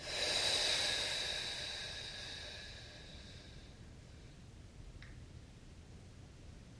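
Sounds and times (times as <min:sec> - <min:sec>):
deep breath through the nose in a guided breathing exercise: 0:00.0 - 0:03.8.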